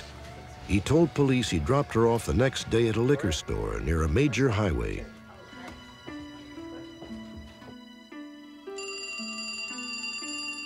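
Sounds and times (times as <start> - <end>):
speech: 0.7 - 5.2
telephone ringing with an electronic melody: 8.8 - 10.6.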